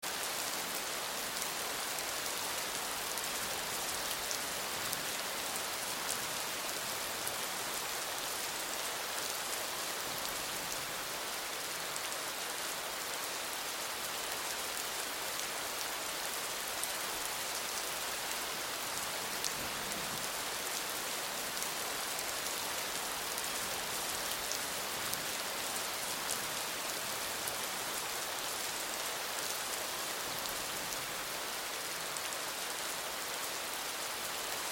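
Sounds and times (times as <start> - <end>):
rain in a city: 0.0 - 34.7.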